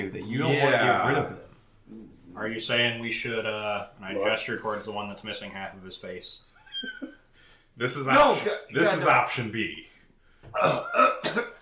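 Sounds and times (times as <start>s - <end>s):
speech: 0.0s - 7.1s, 7.8s - 11.5s
narrator imitating a rough hacking cough: 10.5s - 11.5s.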